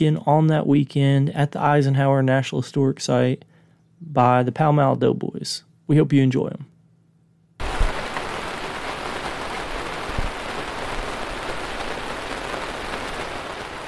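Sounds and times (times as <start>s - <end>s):
speech: 0.0s - 6.7s
steady rain pattering on a surface: 7.6s - 13.8s.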